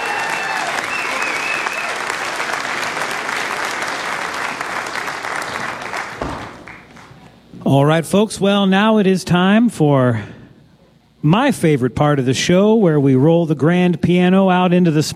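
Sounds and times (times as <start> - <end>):
large audience applauding after a live music performance: 0.0 - 7.2
speech: 7.7 - 10.4, 11.2 - 15.1.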